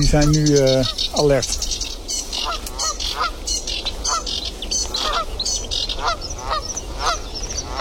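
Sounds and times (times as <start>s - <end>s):
speech: 0.0s - 1.8s
Canada geese honking on water: 0.0s - 7.8s.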